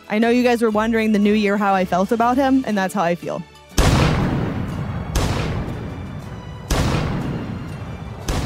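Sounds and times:
speech: 0.1s - 3.5s
heavy cannon blast sound effects: 3.8s - 8.4s.

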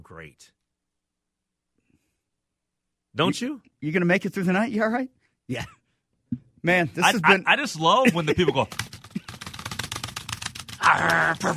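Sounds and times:
speech: 0.1s - 0.6s, 3.2s - 8.9s, 10.9s - 11.5s
laughter: 7.0s - 9.3s, 10.8s - 11.5s
rapid forceful typing on a computer keyboard: 8.1s - 11.5s.

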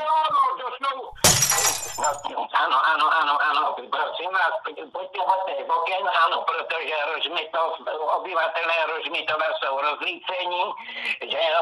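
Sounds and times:
window glass shattering from stones thrown at the window: 1.2s - 2.3s
speech: 2.0s - 11.6s.

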